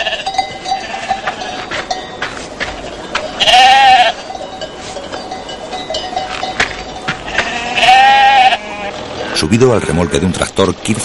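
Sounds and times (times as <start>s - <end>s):
loud wavering bleats: 0.0s - 1.6s, 3.4s - 4.2s, 7.3s - 10.4s
large flock of sheep bleating: 0.0s - 1.8s, 2.6s - 4.3s, 7.1s - 10.4s
livestock bells ringing: 0.0s - 10.7s
speech: 9.4s - 11.0s.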